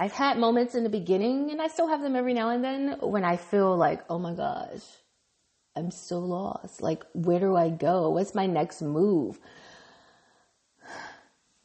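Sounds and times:
speech: 0.0 - 5.0, 5.8 - 9.7
deep breath: 9.4 - 11.4.

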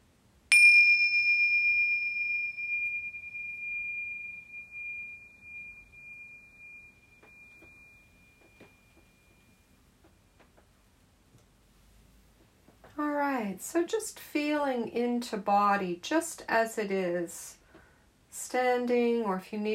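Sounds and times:
meditation bell ringing: 0.5 - 9.9
speech: 13.4 - 17.6, 18.5 - 19.7.

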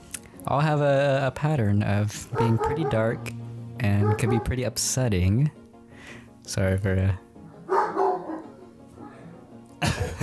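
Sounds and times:
speech: 0.4 - 5.6, 6.4 - 7.2
pet dog barking: 2.3 - 3.3, 4.0 - 4.6, 7.6 - 9.4.

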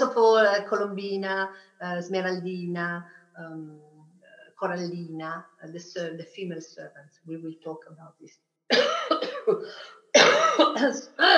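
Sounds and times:
speech: 0.6 - 3.9, 4.6 - 11.3
person coughing: 8.7 - 10.6.

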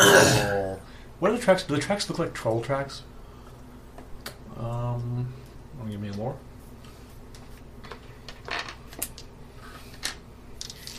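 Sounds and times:
low steady hum: 0.0 - 10.9
speech: 1.2 - 3.1, 4.6 - 6.5
dice rolled and rattling across a tabletop: 7.3 - 10.9.

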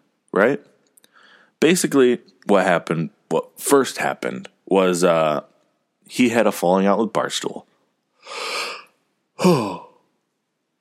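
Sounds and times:
speech: 0.4 - 0.8, 1.6 - 5.5, 6.1 - 8.6, 9.4 - 9.8
person yawning: 8.3 - 10.0.

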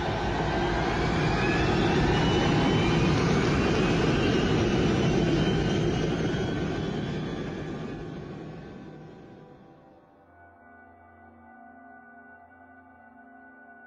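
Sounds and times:
Boeing 747 jet engines roaring as the airliner accelerates for takeoff: 0.0 - 9.6.

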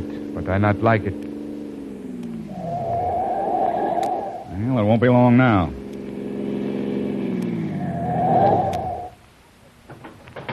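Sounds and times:
car engine roaring while approaching and pulling up: 0.0 - 9.5
speech: 0.4 - 1.3, 4.6 - 5.8
faint clicks and knocks: 9.2 - 10.5.

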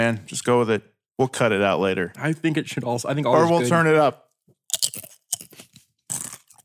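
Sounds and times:
speech: 0.0 - 4.2
tortilla chip being bitten and chewed: 4.7 - 6.6.

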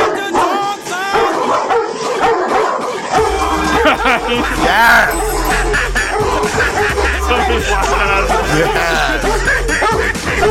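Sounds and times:
several dogs barking and yipping: 1.2 - 6.9
laughter: 3.6 - 5.7, 7.1 - 9.7
speech: 4.3 - 5.8, 6.6 - 10.4.

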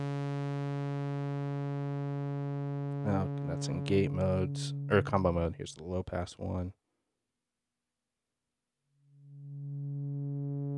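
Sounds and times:
harmonically rich synthesizer tone with slow sine-wave LFO modulation: 0.0 - 5.4, 9.4 - 10.7
speech: 3.1 - 6.8.

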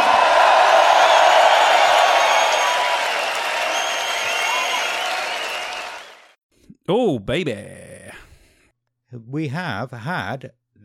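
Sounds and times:
large crowd clapping and cheering: 0.0 - 6.4
speech: 6.9 - 7.8, 9.1 - 10.8.

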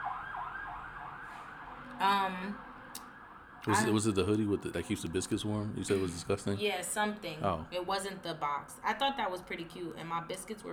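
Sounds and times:
ambulance siren wailing outside: 0.0 - 5.6
speech: 2.0 - 2.7, 3.6 - 10.7.

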